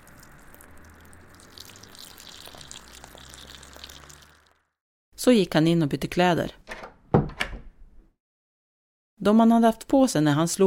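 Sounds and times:
garden hose spraying water: 0.0s - 4.7s
speech: 5.2s - 6.6s, 9.2s - 10.6s.

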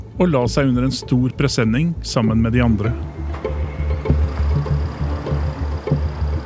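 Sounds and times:
speech: 0.2s - 4.2s
truck engine idling: 2.7s - 6.4s.

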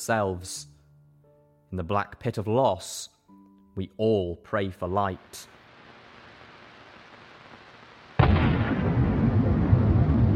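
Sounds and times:
speech: 0.0s - 0.7s, 1.7s - 3.2s, 3.8s - 5.6s
massive explosion: 8.2s - 10.3s.

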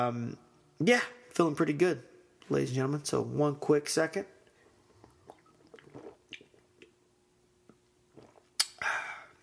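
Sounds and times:
speech: 0.0s - 4.3s
person sipping and swallowing IPA beer: 4.5s - 7.0s, 7.6s - 9.4s
louder exhale: 8.8s - 9.4s.

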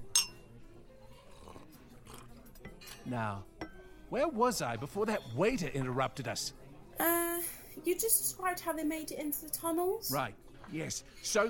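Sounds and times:
wine glasses clinking in a toast: 0.0s - 0.5s, 2.5s - 3.9s
speech: 3.1s - 3.5s, 4.1s - 7.2s, 7.8s - 11.4s.

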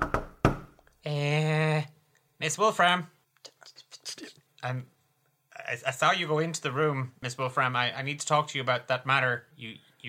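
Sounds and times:
firm knocks on a door: 0.0s - 0.7s
speech: 1.0s - 3.2s, 4.6s - 4.9s, 5.7s - 10.0s.

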